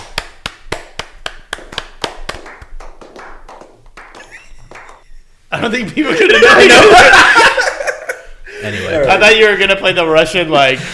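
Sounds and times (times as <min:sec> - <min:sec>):
hand claps: 0:00.0 - 0:05.2
speech: 0:05.6 - 0:07.4, 0:09.1 - 0:10.9
laughter: 0:06.0 - 0:09.5.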